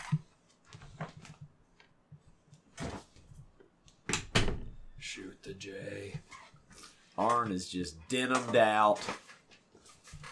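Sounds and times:
door pushed shut with rattling and scuffing: 4.1s - 4.8s
speech: 5.2s - 6.4s, 7.2s - 9.2s.

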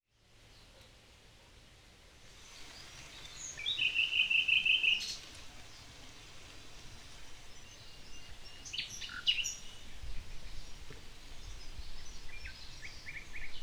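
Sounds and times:
Common nightingale singing: 2.4s - 6.0s, 7.1s - 13.6s
Tramuntana wind: 5.4s - 13.6s.

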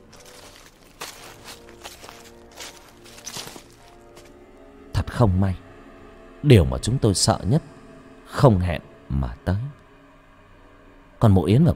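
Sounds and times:
steady low tonal drone: 0.0s - 11.7s
footsteps stomping: 0.1s - 4.3s
speech: 5.2s - 5.6s, 6.4s - 7.7s, 8.4s - 9.8s, 11.2s - 11.7s.

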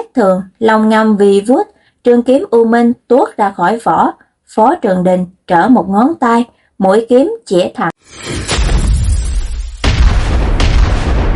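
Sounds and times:
speech: 0.2s - 8.4s
deep heavy rumbling as the ground shakes: 8.1s - 11.3s.

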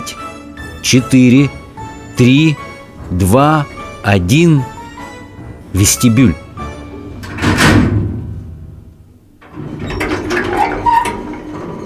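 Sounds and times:
elevator doors sliding open: 0.0s - 11.8s
speech: 0.8s - 1.6s, 2.2s - 4.8s, 5.7s - 6.4s
rattling scraping mechanical movement of elevator: 4.7s - 11.8s.

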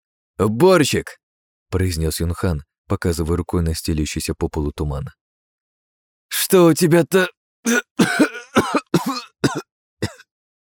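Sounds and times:
speech: 0.4s - 5.2s, 6.5s - 8.7s
man coughing hard: 7.7s - 10.3s.

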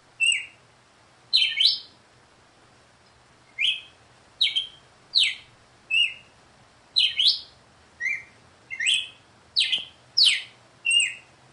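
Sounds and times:
female red-cowled cardinal singing bright whistled notes: 0.2s - 0.6s, 1.3s - 1.9s, 3.5s - 6.3s, 7.0s - 11.5s.

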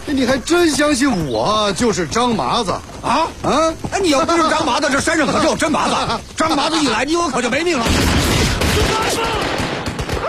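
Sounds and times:
speech: 0.1s - 8.2s
gunfire volley in a film shootout between bandits: 7.8s - 10.2s.

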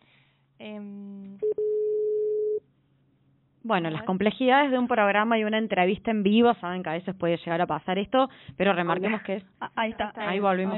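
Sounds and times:
speech: 0.6s - 1.0s, 3.7s - 10.7s
buzzy telephone tone as a call is redialed: 1.4s - 2.6s.

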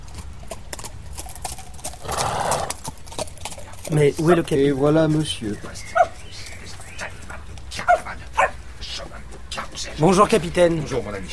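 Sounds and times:
horse hooves clip-clopping as a horse arrives back from a ride: 0.0s - 11.3s
horse breathy burst: 0.8s - 4.7s
speech: 3.9s - 6.0s, 10.0s - 11.3s.

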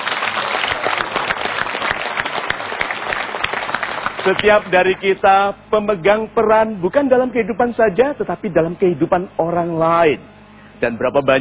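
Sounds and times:
audience applause at a motivational seminar: 0.0s - 5.1s
speech: 4.2s - 11.4s.

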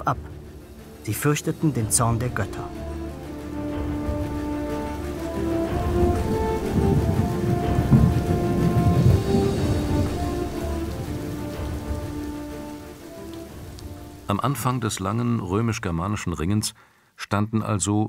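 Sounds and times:
speech: 0.0s - 0.4s, 1.0s - 2.9s, 14.3s - 18.0s
steady rainfall on surfaces: 0.0s - 15.2s
deep rolling thunder: 2.7s - 14.3s.

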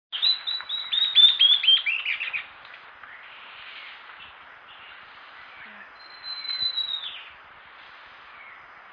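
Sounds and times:
bird chirps sliding downward in pitch: 0.1s - 2.5s, 6.0s - 7.4s
thin whistled bird note: 6.0s - 7.2s.

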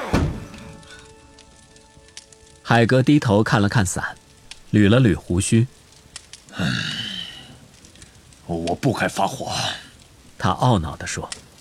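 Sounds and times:
door slamming shut: 0.0s - 1.2s
speech: 2.7s - 5.8s, 6.6s - 7.0s, 8.5s - 9.8s, 10.4s - 11.4s.

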